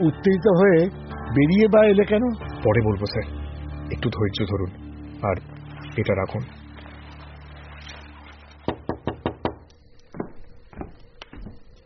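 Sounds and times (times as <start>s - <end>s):
speech: 0.0s - 6.6s
knocking on a door: 8.7s - 9.6s.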